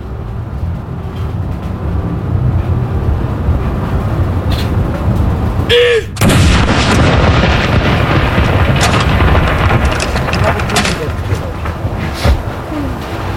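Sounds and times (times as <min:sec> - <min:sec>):
ambient noise: 0:00.0 - 0:13.3
steady outdoor rumble: 0:00.0 - 0:13.3
cannon salute boom: 0:06.1 - 0:09.8.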